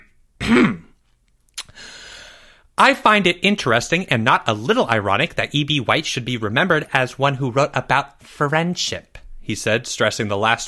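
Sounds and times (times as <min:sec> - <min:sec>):
man clearing his throat: 0:00.4 - 0:01.0
speech: 0:02.8 - 0:10.6.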